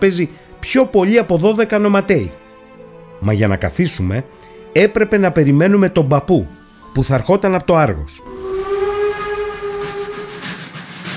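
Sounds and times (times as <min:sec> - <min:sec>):
speech: 0:00.0 - 0:02.4, 0:03.2 - 0:08.7
steam train whistle blast: 0:08.3 - 0:11.1.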